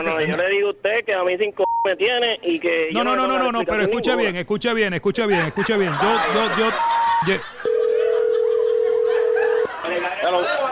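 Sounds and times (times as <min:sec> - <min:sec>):
speech: 0:00.0 - 0:07.6, 0:10.3 - 0:10.7
laughter: 0:05.2 - 0:10.7
telephone dial tone after a call is hung up: 0:07.6 - 0:09.7.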